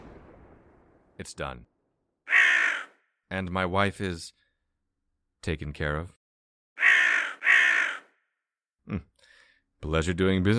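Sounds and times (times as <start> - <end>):
speech: 1.2 - 1.7, 3.3 - 4.4, 5.4 - 6.2, 8.9 - 9.1, 9.8 - 10.5
crow cawing near crop fields with scarecrows: 2.3 - 3.1, 6.8 - 8.2.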